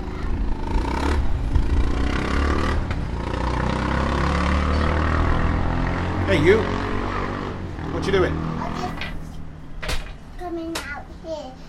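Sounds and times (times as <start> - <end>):
motorbike engine rumbling in the street below: 0.0 - 10.4
broad outdoor noise: 0.0 - 11.6
speech: 6.3 - 6.8, 8.0 - 8.5.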